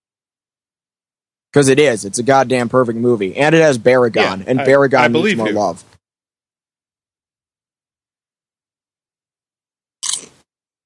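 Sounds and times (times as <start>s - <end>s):
speech: 1.5s - 5.9s
crisp crunchy bite of food: 10.0s - 10.5s.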